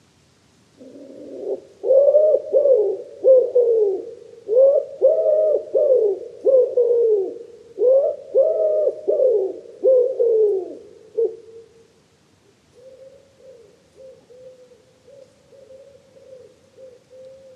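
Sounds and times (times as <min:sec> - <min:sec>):
wood pigeon cooing: 0:00.8 - 0:11.8, 0:12.6 - 0:17.5.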